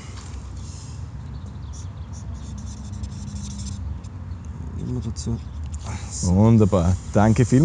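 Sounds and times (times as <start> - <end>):
pen scratching across a page of an autograph book as someone signs: 1.7 - 4.1
speech: 4.9 - 7.6.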